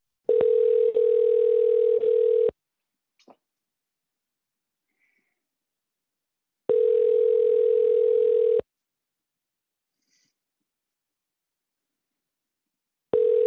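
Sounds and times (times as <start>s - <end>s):
ringback tone of an outgoing phone call: 0.3s - 2.5s, 6.7s - 8.6s, 13.2s - 13.4s.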